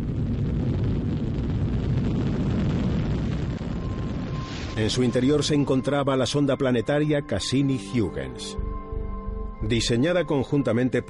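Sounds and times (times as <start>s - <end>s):
Titan IVB Centaur rocket launching from Cape Canaveral: 0.0s - 5.5s
speech: 4.8s - 8.6s, 9.6s - 11.0s.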